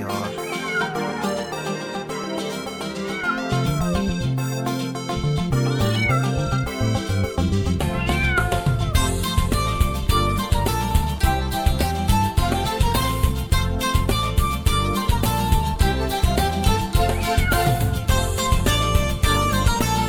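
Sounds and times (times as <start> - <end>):
loud busy music track with a steady bass line: 0.0 - 20.0
cat meowing: 0.1 - 4.0, 7.9 - 9.0, 17.0 - 18.2.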